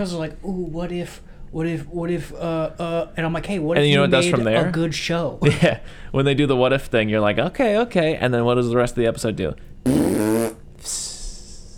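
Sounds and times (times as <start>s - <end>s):
speech: 0.0s - 11.0s
short loud buzzy fart sound: 9.8s - 10.7s.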